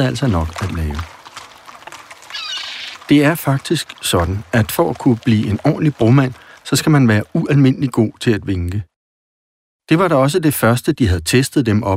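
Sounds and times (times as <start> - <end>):
speech: 0.0 - 1.2, 3.1 - 8.9, 9.9 - 11.9
hooves of a horse ridden over a bridge clip-clopping: 0.0 - 7.7
horse whinnying: 2.2 - 3.1.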